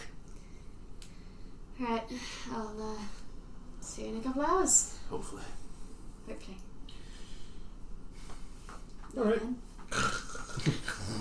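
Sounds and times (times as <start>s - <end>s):
faint hiss of noise: 0.0s - 11.2s
speech: 1.8s - 3.2s, 3.8s - 5.7s, 6.3s - 6.7s, 9.1s - 11.2s
person imitating loud snoring: 9.9s - 11.2s.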